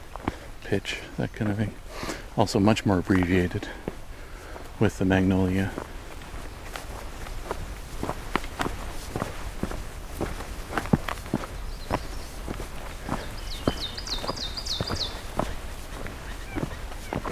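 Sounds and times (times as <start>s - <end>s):
crunching footsteps: 0.0s - 17.3s
speech: 0.7s - 3.9s, 4.8s - 5.9s
blue jays calling while picking seeds from a black spruce: 11.5s - 17.3s.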